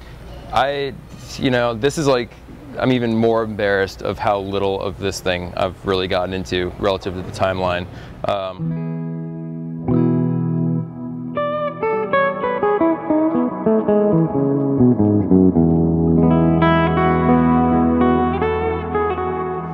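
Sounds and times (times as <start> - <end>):
speech: 0.5 - 8.8
sustained instrument notes in big washy reverb from a Night Sky effects pedal: 8.6 - 19.7.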